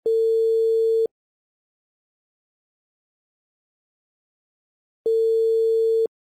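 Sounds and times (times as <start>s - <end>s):
Chinese telephone ringback tone: 0.1s - 1.1s, 5.1s - 6.1s.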